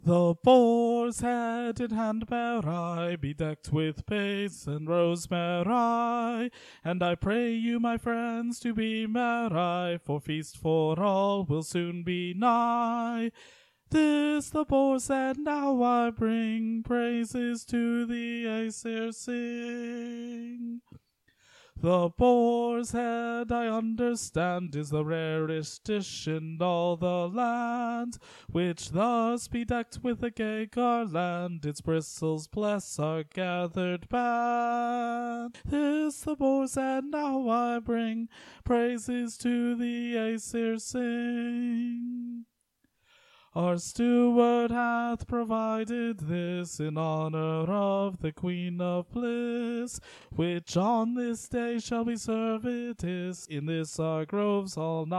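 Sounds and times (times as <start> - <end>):
tenor singing a carol: 0.0 - 20.8, 21.8 - 42.4, 43.6 - 55.1.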